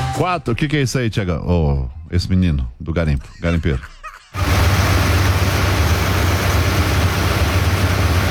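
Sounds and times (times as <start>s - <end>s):
speech: 0.2s - 4.0s
large engine running mining equipment at a gold-mining site: 4.4s - 8.2s.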